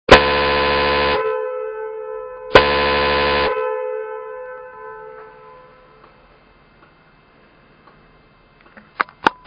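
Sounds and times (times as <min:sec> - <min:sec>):
horn honking: 0:00.1 - 0:06.0.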